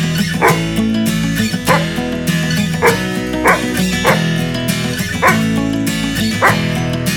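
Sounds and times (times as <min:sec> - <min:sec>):
music: 0:00.0 - 0:07.1
dog barking: 0:00.4 - 0:00.8, 0:01.5 - 0:02.0, 0:02.8 - 0:04.4, 0:05.1 - 0:05.5, 0:06.4 - 0:06.7.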